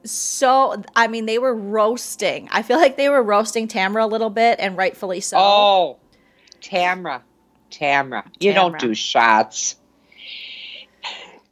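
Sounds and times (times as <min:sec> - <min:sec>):
speech: 0:00.0 - 0:06.0, 0:06.6 - 0:10.4
small stifled sneeze: 0:11.0 - 0:11.5.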